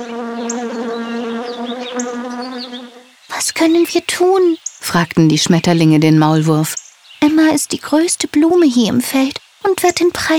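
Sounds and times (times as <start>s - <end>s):
bees buzzing: 0.0s - 4.5s
speech: 3.4s - 10.3s.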